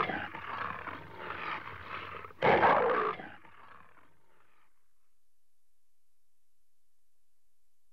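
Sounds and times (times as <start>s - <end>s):
leopard growling and snarling in Africa: 0.0s - 4.7s.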